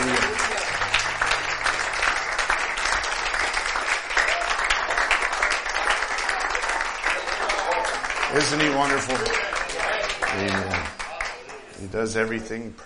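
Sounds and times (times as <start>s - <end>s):
crowd of people clapping: 0.0s - 11.9s
speech: 8.4s - 9.5s, 10.3s - 11.0s, 11.8s - 12.8s.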